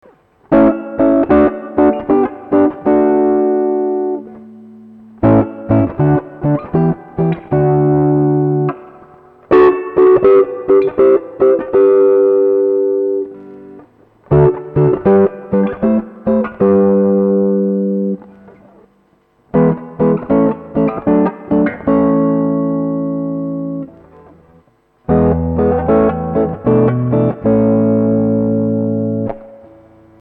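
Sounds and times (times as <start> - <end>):
guitar playing triads as full chords: 0.0 - 30.2.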